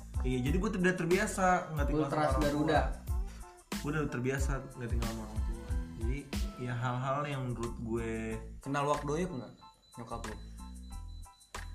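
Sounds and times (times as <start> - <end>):
speech: 0.2 - 3.0, 3.8 - 10.5
prepaid electricity meter low-credit warning beeps: 2.1 - 3.0, 9.3 - 11.7.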